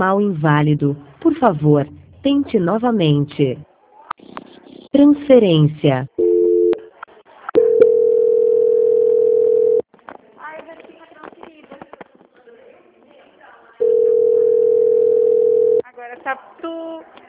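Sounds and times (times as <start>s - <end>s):
speech: 0.0s - 3.7s, 5.0s - 6.2s
telephone ringing tone while a call connects: 6.2s - 6.8s, 7.6s - 9.8s, 13.8s - 15.8s.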